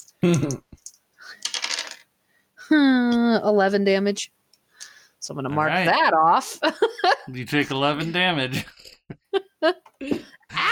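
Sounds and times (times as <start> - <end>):
speech: 0.2 - 0.7, 2.7 - 4.4, 5.2 - 10.2
dice clattering across a hard surface: 0.8 - 2.1.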